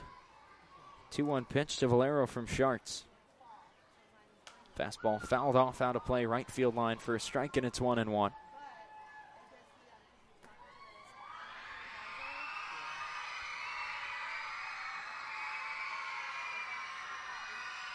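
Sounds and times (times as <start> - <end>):
speech: 1.1 - 3.1, 4.8 - 8.4
young fans cheering and screeching in stadium: 4.8 - 9.5, 10.6 - 17.9.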